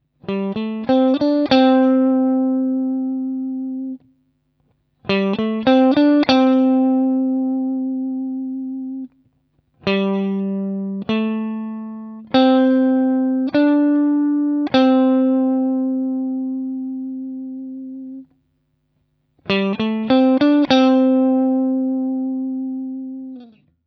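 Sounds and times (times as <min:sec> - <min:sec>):
guitar vibrato lick: 0:00.2 - 0:04.1, 0:05.1 - 0:09.2, 0:09.8 - 0:18.3, 0:19.5 - 0:23.7.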